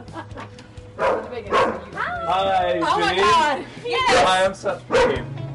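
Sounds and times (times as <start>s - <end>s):
dog barking and yipping: 1.0s - 1.9s, 4.9s - 5.3s
speech: 2.3s - 5.2s.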